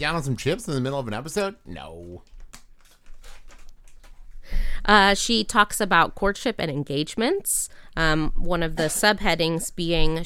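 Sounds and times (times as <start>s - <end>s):
speech: 0.0s - 2.4s, 4.8s - 10.2s
plastic pet treat bag crinkling: 2.0s - 4.4s.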